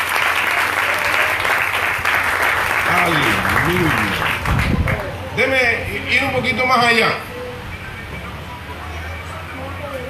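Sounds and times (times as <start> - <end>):
audience at a church service applauding: 0.0 - 5.1
speech: 3.1 - 4.8, 5.4 - 7.3.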